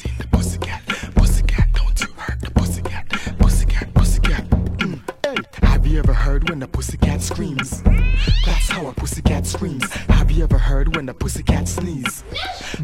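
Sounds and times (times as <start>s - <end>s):
thumping beat with low bass pulses: 0.0s - 12.2s
fighting cats yowling: 7.9s - 8.9s.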